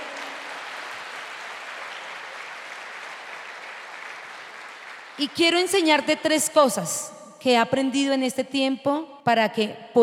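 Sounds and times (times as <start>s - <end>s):
audience applauding: 0.0s - 5.2s
speech: 5.2s - 10.0s.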